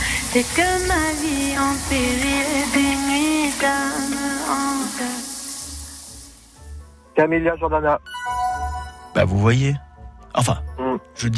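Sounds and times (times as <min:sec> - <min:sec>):
woman singing while showering: 0:00.0 - 0:05.9
shower water running in a bathroom: 0:00.0 - 0:07.0
speech: 0:00.4 - 0:05.3, 0:07.2 - 0:08.1, 0:09.2 - 0:11.3.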